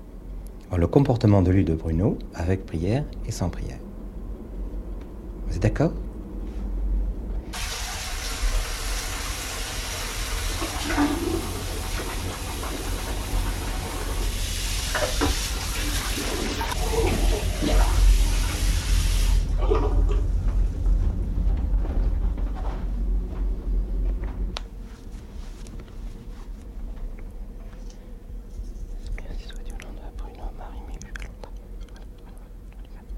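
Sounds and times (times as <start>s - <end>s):
low rumble: 0.0s - 7.6s, 16.7s - 33.1s
faint hum: 0.0s - 33.1s
speech: 0.7s - 3.8s, 5.5s - 6.1s
clean water pouring into a container: 7.6s - 20.0s.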